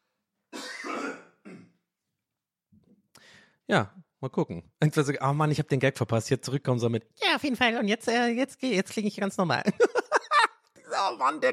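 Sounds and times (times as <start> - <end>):
person coughing to clear the throat: 0.5 - 1.8
speech: 3.7 - 9.9, 11.0 - 11.5
laughter: 9.7 - 11.5.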